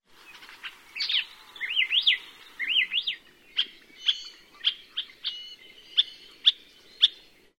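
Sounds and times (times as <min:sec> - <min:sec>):
Hawaii elepaio calling: 0:00.2 - 0:07.5.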